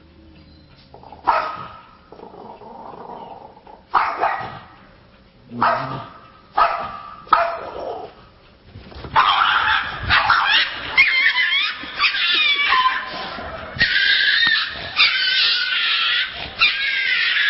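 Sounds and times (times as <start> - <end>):
dog barking and yipping: 1.2 - 2.0, 3.9 - 4.8, 5.6 - 8.3, 9.0 - 17.4.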